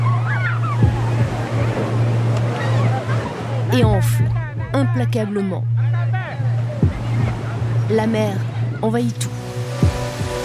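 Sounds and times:
ocean waves surging toward the shore: 0.0s - 10.4s
steady low hum: 0.1s - 8.8s
speech: 4.9s - 5.7s, 7.9s - 9.4s.

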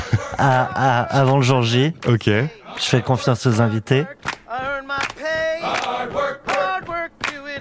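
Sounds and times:
laughter: 0.0s - 1.3s
speech: 0.3s - 4.3s
group of voices chanting a military running cadence in call-and-response: 2.5s - 3.4s, 4.2s - 7.5s.

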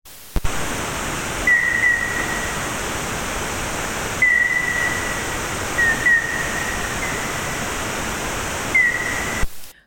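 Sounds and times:
loud hiss: 0.1s - 9.8s
slowed-down common noctule bat call: 1.4s - 2.8s, 4.0s - 9.4s.

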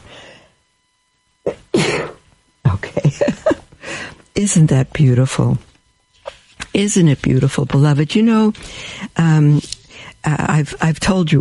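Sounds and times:
person sneezing: 1.5s - 2.2s
speech: 4.4s - 5.7s, 6.8s - 11.3s.

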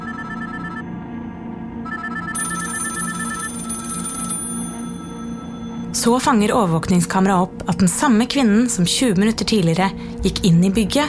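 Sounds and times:
several telephones ringing at the same time: 0.0s - 0.9s, 1.8s - 6.0s
speech: 6.0s - 11.0s.

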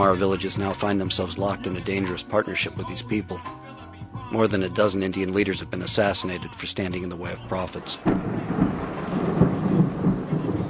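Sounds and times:
speech: 0.0s - 3.7s, 4.3s - 8.9s
heavy rain pouring: 7.8s - 10.6s
low thunder rumbling: 7.8s - 10.6s.

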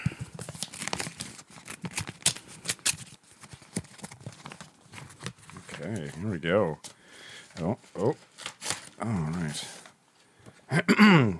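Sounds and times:
paper envelope being torn open: 0.2s - 5.8s, 8.2s - 9.5s
speech: 5.8s - 6.9s, 7.6s - 8.3s, 9.0s - 9.8s, 10.7s - 11.3s.

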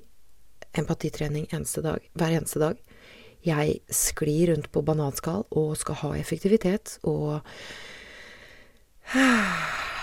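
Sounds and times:
speech: 0.8s - 8.0s, 9.1s - 9.9s
long airy breath drawn in close to the mic: 2.9s - 3.4s, 7.5s - 10.0s.

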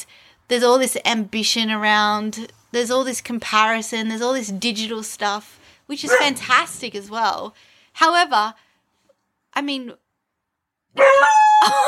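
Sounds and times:
speech: 0.0s - 8.6s, 9.6s - 10.0s, 10.9s - 11.8s
dog giving yowling barks after hearing its name: 6.0s - 6.5s.

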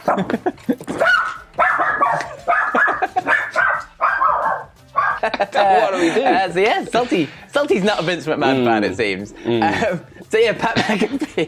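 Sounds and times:
speech: 0.0s - 0.8s, 5.6s - 11.4s
laughter: 0.0s - 1.0s, 2.4s - 3.6s, 5.2s - 8.2s, 9.5s - 11.4s
dog barking with sharper yips: 0.9s - 5.3s.

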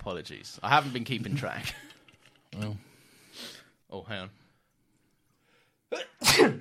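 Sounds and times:
speech: 0.1s - 1.9s, 2.5s - 2.8s, 3.4s - 4.4s
sneeze: 5.9s - 6.5s.

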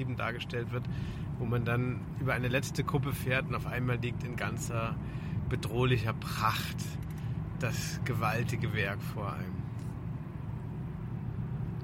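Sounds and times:
speech: 0.0s - 9.6s
car driving along a road: 0.0s - 11.8s.

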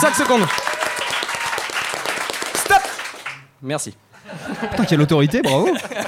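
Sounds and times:
speech: 0.0s - 0.8s, 3.6s - 6.0s
live audience clapping as fast as possible: 0.0s - 3.5s
laughter: 4.2s - 6.0s.

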